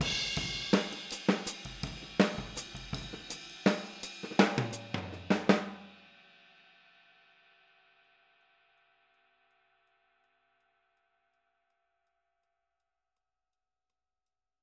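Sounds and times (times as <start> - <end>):
boogaloo hi-hat outro pattern: 0.0 - 6.1.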